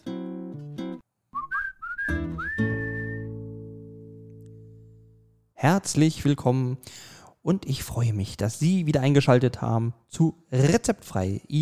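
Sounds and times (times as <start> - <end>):
whistled phrase of quick rising and falling notes: 1.4 - 3.4
speech: 5.6 - 11.6.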